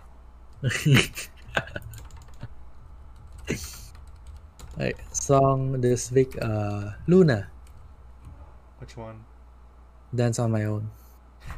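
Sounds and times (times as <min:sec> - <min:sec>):
speech: 0:00.6 - 0:01.3, 0:04.8 - 0:07.5, 0:08.8 - 0:09.3, 0:10.1 - 0:11.5
laughter: 0:00.6 - 0:02.5
typing on a computer keyboard: 0:01.6 - 0:05.4.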